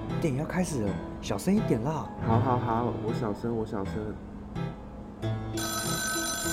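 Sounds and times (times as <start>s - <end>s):
speech: 0.2s - 4.7s
mobile phone ringtone with bright electronic tones: 5.5s - 6.5s.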